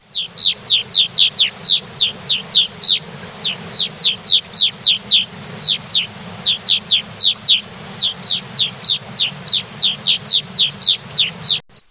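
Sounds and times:
Brown-capped rosy finch: 0.0s - 11.8s.

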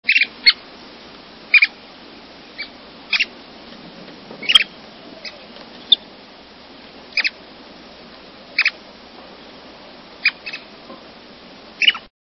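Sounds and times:
Wilson's plover: 0.1s - 0.6s, 1.4s - 1.8s, 2.4s - 6.2s, 7.1s - 7.5s, 8.4s - 8.9s, 10.1s - 11.0s, 11.8s - 12.1s.

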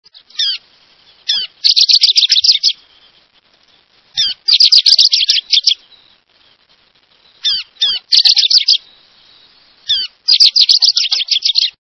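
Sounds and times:
Rufous-crowned Sparrow songs: 0.1s - 11.8s.

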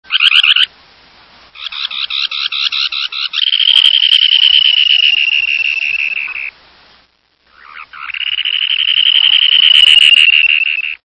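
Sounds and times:
dunlin call: 1.6s - 6.6s, 7.5s - 11.0s.

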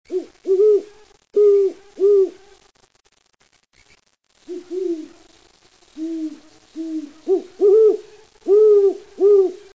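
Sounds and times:
Great Horned Owl: 0.1s - 2.4s, 4.5s - 5.2s, 6.0s - 9.7s.

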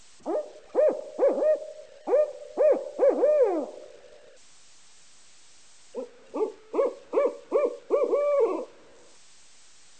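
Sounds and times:
Barred Owl: 0.2s - 4.4s, 6.0s - 9.0s.

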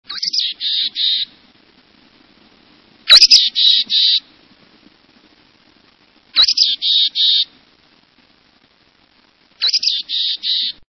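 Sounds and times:
Mountain Chickadee calling: 0.1s - 1.4s, 3.0s - 4.3s, 6.3s - 7.5s, 9.6s - 10.8s.

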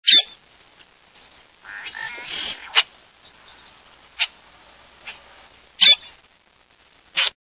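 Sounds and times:
Tricolored Blackbird calling: 1.2s - 5.2s.

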